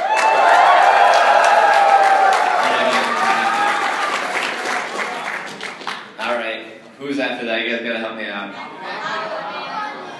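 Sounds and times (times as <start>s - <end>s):
crowd whooping and shouting: 0.0s - 5.3s
crowd clapping: 0.0s - 6.2s.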